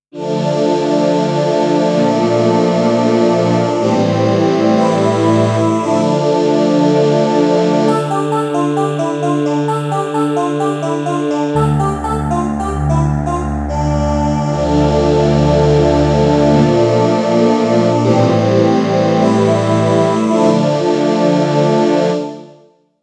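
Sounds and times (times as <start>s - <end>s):
synth choir: 0.2s - 22.6s.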